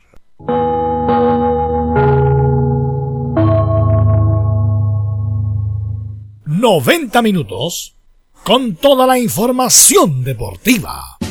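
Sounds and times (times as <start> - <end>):
gong struck as a radio network cue: 0.4 - 6.3
speech: 6.6 - 11.2.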